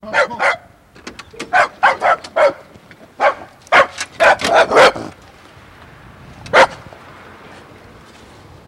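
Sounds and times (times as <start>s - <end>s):
dog barking at post through mail box: 0.1s - 0.7s, 1.5s - 5.1s, 6.5s - 6.8s.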